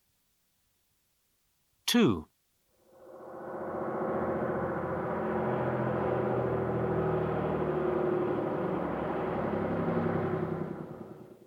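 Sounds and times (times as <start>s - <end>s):
speech: 1.9s - 2.3s
large bus engine rumbling: 3.5s - 11.3s.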